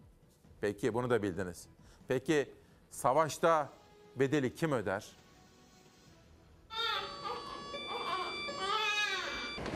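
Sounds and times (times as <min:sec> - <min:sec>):
speech: 0:00.6 - 0:05.2
newborn baby crying: 0:06.7 - 0:09.6.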